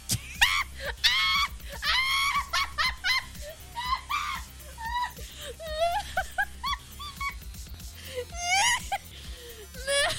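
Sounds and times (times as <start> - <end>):
teenager cackling: 0.3 - 7.4, 8.3 - 9.0.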